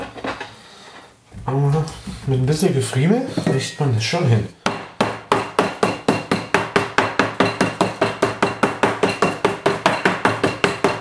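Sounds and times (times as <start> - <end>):
speech: 1.5 - 4.6
meat mallet pounding roulade beef flat in a kitchen: 4.6 - 11.0.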